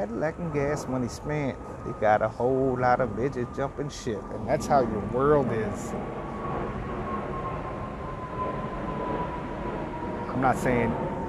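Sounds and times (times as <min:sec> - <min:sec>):
speech: 0:00.0 - 0:06.3, 0:10.4 - 0:11.1
airplane flying overhead: 0:00.0 - 0:11.2.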